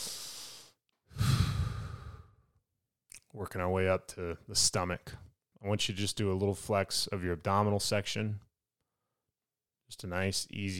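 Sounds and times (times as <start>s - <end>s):
breathy exhale through the mouth during a guided breathing exercise: 0.0s - 2.4s
deep inhale through the nose during a guided breathing exercise: 0.0s - 2.4s
speech: 3.4s - 8.5s, 9.9s - 10.7s.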